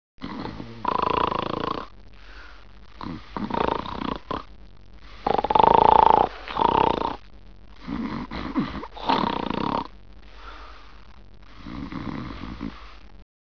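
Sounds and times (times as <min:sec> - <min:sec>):
men snoring: 0:00.2 - 0:01.9, 0:03.0 - 0:04.5, 0:05.2 - 0:07.2, 0:07.8 - 0:09.9, 0:11.5 - 0:13.0.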